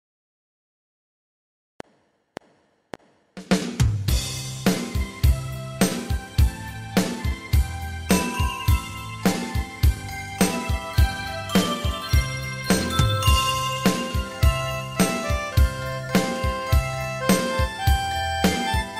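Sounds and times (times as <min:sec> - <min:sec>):
beat music: 0:04.2 - 0:18.9.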